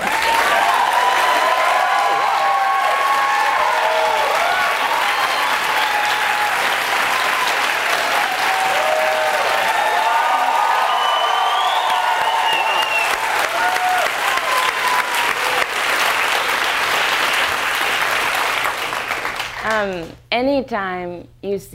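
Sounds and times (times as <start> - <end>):
scattered cheers and whoops: 0.0 - 15.8
large audience applauding: 0.0 - 20.0
speech: 20.7 - 21.7.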